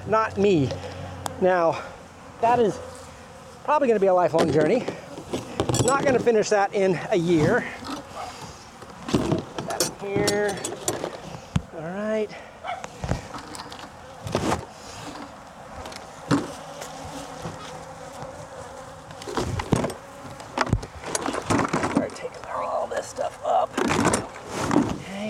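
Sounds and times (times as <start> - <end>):
honeybees buzzing around an open hive in an apiary: 0.0 - 25.2
speech: 0.1 - 2.9, 3.7 - 5.0, 5.9 - 7.9, 10.0 - 10.7, 11.8 - 12.5
knocks and rustling from handling a board with bees: 4.4 - 6.4, 7.4 - 11.7, 12.9 - 22.2, 23.7 - 25.0.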